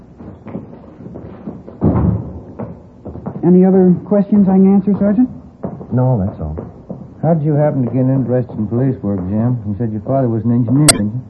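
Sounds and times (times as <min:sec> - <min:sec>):
door thudding shut: 0:01.8 - 0:02.7
speech: 0:03.4 - 0:06.4, 0:07.2 - 0:11.2.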